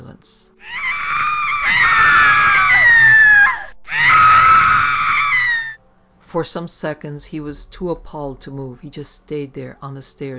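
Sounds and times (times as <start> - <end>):
speech: 0.2 - 0.8, 6.3 - 10.3
person screaming in terror: 0.6 - 5.8.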